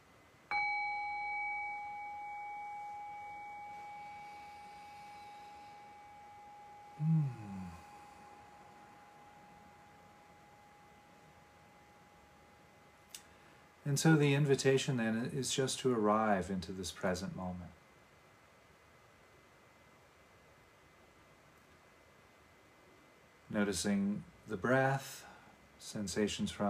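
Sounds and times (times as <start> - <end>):
single meditation bell struck to begin a guided meditation: 0.5 - 13.0
speech: 13.9 - 17.8, 23.6 - 26.6.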